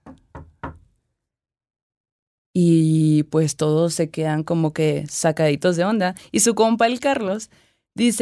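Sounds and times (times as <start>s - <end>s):
firm knocking on a door: 0.0s - 0.9s
speech: 2.6s - 8.2s.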